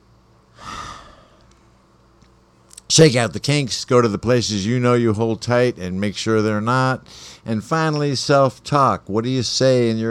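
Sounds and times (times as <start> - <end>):
deep grounding breath: 0.5 - 1.6, 7.1 - 7.5
speech: 3.0 - 10.0.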